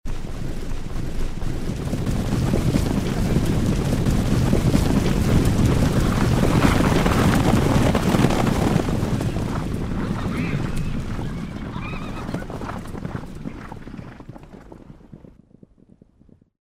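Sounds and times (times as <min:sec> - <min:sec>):
herd of horses running past: 0:00.1 - 0:16.5.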